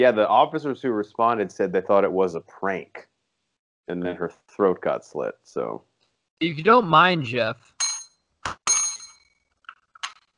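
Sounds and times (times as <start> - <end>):
speech: 0.0 - 3.1, 3.9 - 7.7
bell ringing with bright metallic dings: 7.8 - 9.4.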